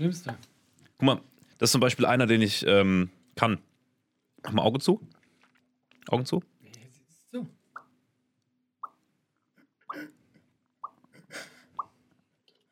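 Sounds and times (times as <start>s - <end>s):
speech: 0.0s - 3.7s, 4.4s - 5.2s, 6.1s - 6.5s, 7.3s - 7.6s
voice imitating dripping water with hollow mouth plops: 8.8s - 9.0s.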